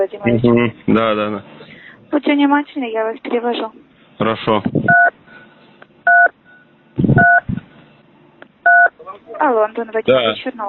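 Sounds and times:
speech: 0.0s - 5.2s, 9.4s - 10.6s
brief low thumps: 7.0s - 7.7s
telephone keypad two-tone beeps during a scam phone call: 7.2s - 7.4s.

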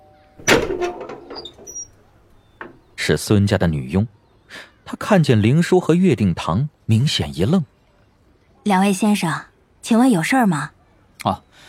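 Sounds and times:
door of a small Western-style house opening with rattle: 0.4s - 3.0s
speech: 0.8s - 1.3s, 3.1s - 7.7s, 8.6s - 11.6s.

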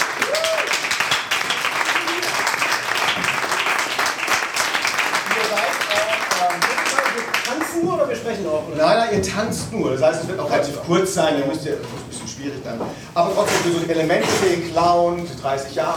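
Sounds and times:
audience applause at an improv theatre show: 0.0s - 7.8s
speech: 8.4s - 15.9s.

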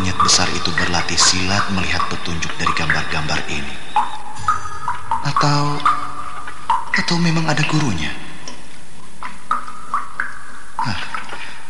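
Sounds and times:
water drips falling in a cave: 0.0s - 11.6s
speech: 0.3s - 4.2s, 5.4s - 5.9s, 7.0s - 8.2s.

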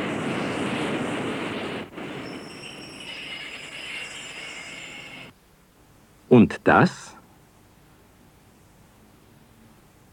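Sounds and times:
subway train pulling into a station: 0.0s - 5.4s
subway train wheel squeal: 2.2s - 5.3s
speech: 6.3s - 7.2s.

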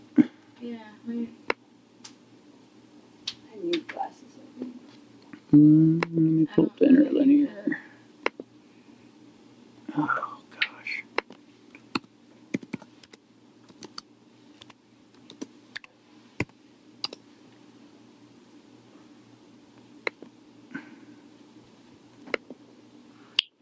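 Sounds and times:
quiet low hum: 0.0s - 23.5s
speech: 0.6s - 1.4s, 5.5s - 7.8s
computer mouse clicking: 11.9s - 17.2s.

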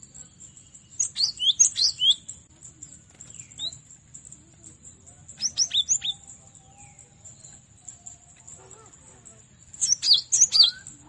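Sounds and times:
Cinereous tit chirping: 0.2s - 2.8s, 4.8s - 7.6s, 9.7s - 11.0s.

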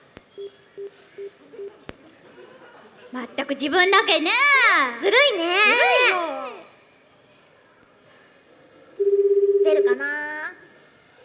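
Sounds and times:
telephone keypad dialing tones: 0.3s - 1.9s, 9.0s - 10.4s
laughter: 0.6s - 7.4s
speech: 3.1s - 6.3s.

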